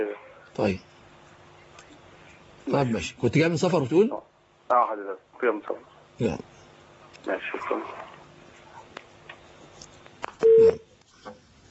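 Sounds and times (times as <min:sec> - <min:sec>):
speech: 0:00.0 - 0:00.9, 0:02.7 - 0:06.5, 0:07.2 - 0:08.0
telephone call connecting tone: 0:10.4 - 0:10.8.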